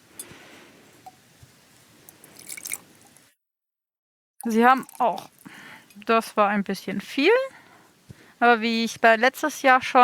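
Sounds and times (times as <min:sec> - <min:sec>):
water dripping: 0:01.0 - 0:03.3, 0:04.4 - 0:06.2
small amount of water poured into a container: 0:02.1 - 0:03.2
speech: 0:04.4 - 0:05.4, 0:06.0 - 0:07.6, 0:08.4 - 0:10.0.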